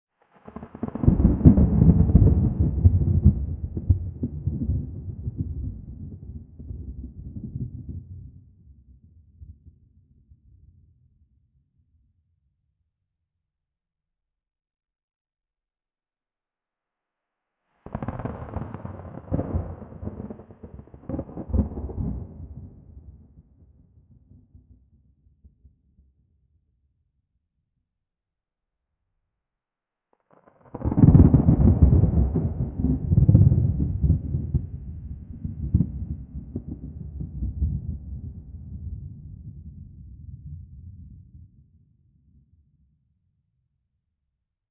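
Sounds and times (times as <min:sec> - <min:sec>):
deep cinematic thunder strikes: 0:00.6 - 0:07.9, 0:17.9 - 0:22.9, 0:30.8 - 0:38.4.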